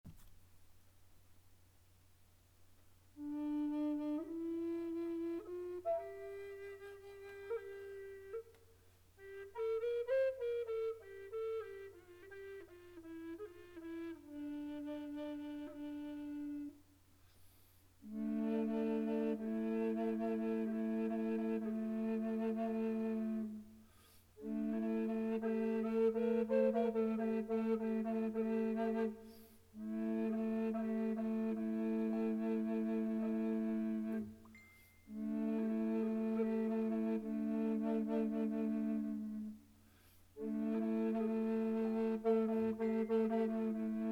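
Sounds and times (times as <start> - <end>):
contrabass Amerindian flute in A and D at 440: 3.0 - 44.1.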